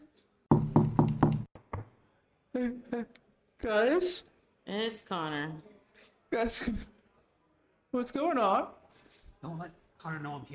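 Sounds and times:
firm knocking on a door: 0.5s - 2.0s
speech: 2.6s - 5.7s, 6.3s - 6.9s, 7.9s - 10.5s.

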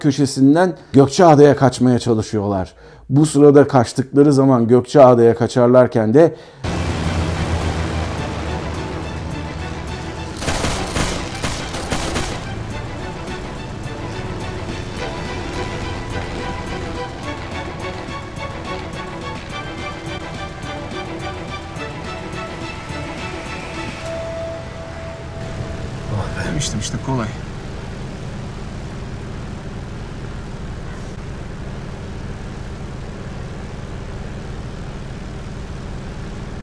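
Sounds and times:
speech: 0.0s - 6.8s
airplane engine roaring during takeoff: 6.6s - 36.6s
high rising airplane engine whine: 6.6s - 36.6s.

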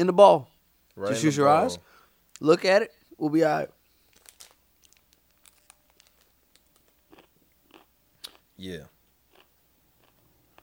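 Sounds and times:
speech: 0.0s - 3.8s, 8.6s - 8.9s
person crunching a chocolate almond candy bar: 4.0s - 8.4s.

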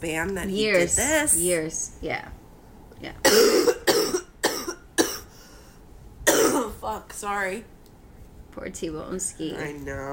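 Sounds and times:
speech: 0.0s - 2.4s, 3.0s - 3.5s, 6.9s - 7.8s, 8.6s - 10.1s
harsh loud coughs: 3.2s - 5.4s, 6.2s - 6.7s.

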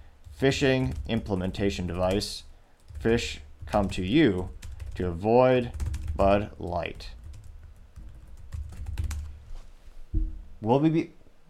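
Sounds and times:
person typing a note on a keyboard: 0.2s - 5.0s, 5.6s - 9.3s
speech: 0.4s - 7.2s, 10.6s - 11.2s.

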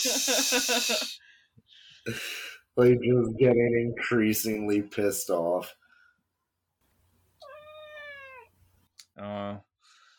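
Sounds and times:
speech: 0.0s - 1.2s, 2.0s - 5.8s, 9.2s - 9.7s
female cat meowing: 7.4s - 8.6s.

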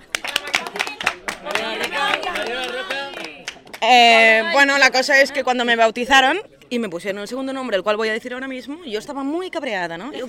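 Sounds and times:
scattered applause: 0.0s - 4.0s
speech: 3.8s - 10.2s.

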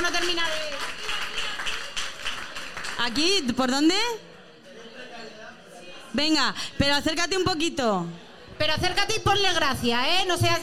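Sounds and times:
speech: 0.0s - 0.6s, 3.0s - 4.3s, 6.1s - 10.6s
crowd applauding: 0.0s - 3.6s.

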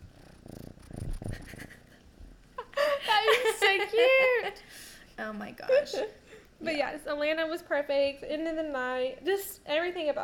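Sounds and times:
cat purring: 0.0s - 2.4s
speech: 3.7s - 10.2s.

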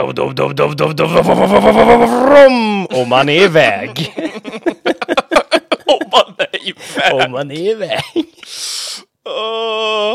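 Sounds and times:
speech: 0.0s - 5.2s, 5.9s - 10.1s
man's voice imitating a V8 engine burbling and revving: 1.0s - 4.0s
laughter: 1.1s - 8.4s.

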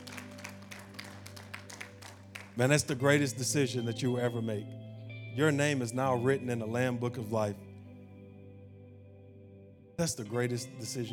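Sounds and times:
audience applauding: 0.0s - 2.8s
speech: 2.6s - 4.8s, 5.4s - 7.7s, 10.0s - 11.1s.

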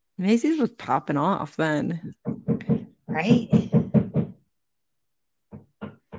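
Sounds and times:
speech: 0.2s - 2.2s, 3.2s - 3.8s
knocking on a door: 2.0s - 4.5s, 5.5s - 6.1s.

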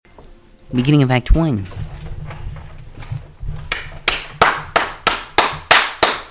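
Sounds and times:
speech: 0.7s - 1.8s
applause for a tournament champion: 3.7s - 6.2s.

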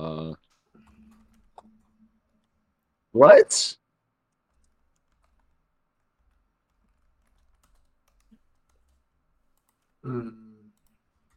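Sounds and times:
faint typing on a computer keyboard: 0.4s - 2.5s, 4.3s - 10.0s, 10.7s - 11.3s
speech: 3.2s - 3.8s, 10.1s - 10.4s.

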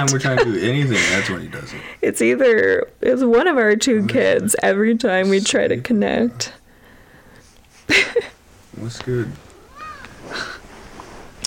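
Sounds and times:
laughter: 0.0s - 1.7s
speech: 0.0s - 6.6s, 7.9s - 9.4s
faint noise: 0.0s - 11.4s
cat meowing: 9.5s - 10.5s.

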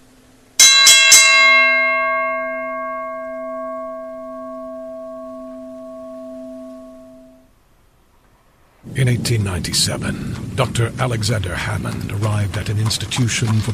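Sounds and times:
bell struck and ringing: 0.6s - 7.5s
speech: 9.0s - 13.7s.

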